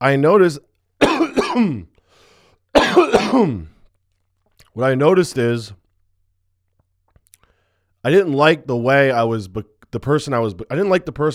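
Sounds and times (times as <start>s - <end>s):
speech: 0.0s - 0.7s, 1.5s - 1.9s, 2.8s - 3.7s, 4.8s - 5.8s, 8.0s - 11.3s
person clearing throat: 1.0s - 1.9s, 2.8s - 3.8s.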